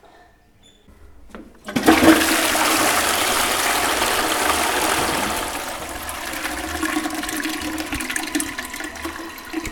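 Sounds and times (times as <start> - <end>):
toilet flushing: 1.6 - 9.6
toilet cistern gurgling refill: 1.9 - 9.6.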